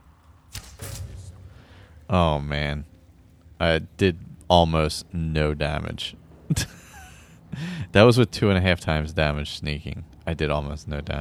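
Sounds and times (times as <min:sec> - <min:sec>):
video game arrow shot from a bow: 0:00.0 - 0:04.4
speech: 0:02.1 - 0:02.9, 0:03.6 - 0:06.8, 0:07.5 - 0:11.1.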